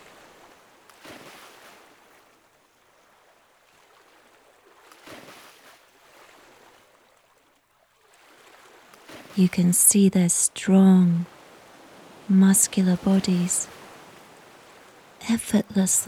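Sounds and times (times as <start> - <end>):
ocean waves breaking: 0.0 - 16.0
ocean surf: 8.5 - 16.0
speech: 9.4 - 11.3, 12.3 - 13.8, 15.3 - 16.0.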